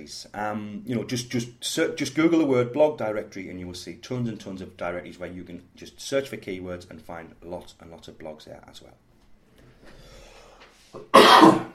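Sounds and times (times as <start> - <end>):
speech: 0.0 - 9.1
person coughing harshly: 11.0 - 11.7.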